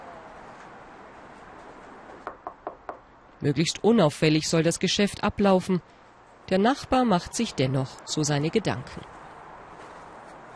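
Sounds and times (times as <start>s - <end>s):
crisp knocks on the front door of a house: 2.2s - 3.0s
speech: 3.4s - 9.1s.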